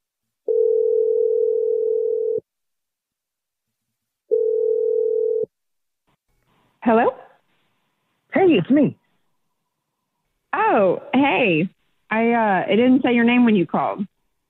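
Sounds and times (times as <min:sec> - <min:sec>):
telephone dial tone: 0:00.5 - 0:02.4, 0:04.3 - 0:05.5
speech: 0:06.9 - 0:07.2, 0:08.6 - 0:09.0, 0:11.6 - 0:14.1.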